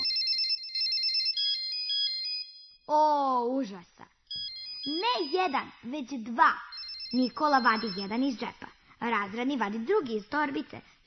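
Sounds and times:
mobile phone ringing with an electronic ringtone: 0.0s - 2.9s, 4.3s - 5.8s, 6.7s - 8.8s
speech: 2.9s - 4.2s, 4.8s - 11.0s.

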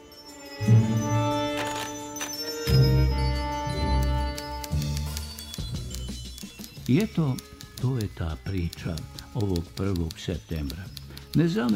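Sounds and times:
school bell ringing: 0.0s - 5.8s
speech: 6.9s - 11.7s.

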